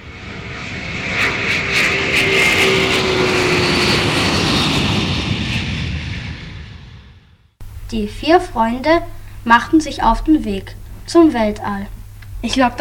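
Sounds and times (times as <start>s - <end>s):
rocket flying into space roaring: 0.0s - 7.6s
speech: 7.9s - 12.7s.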